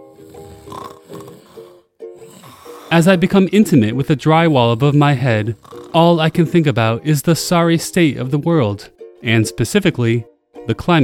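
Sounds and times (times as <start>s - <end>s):
person snoring with a rough nasal rasp: 0.0s - 3.4s, 4.1s - 6.2s
speech: 2.9s - 11.0s.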